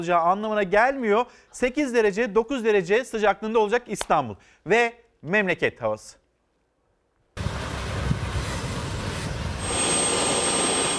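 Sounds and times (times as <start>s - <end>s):
speech: 0.0s - 6.2s
helicopter turbine whine: 7.4s - 10.9s
military helicopter taking off: 7.4s - 10.9s.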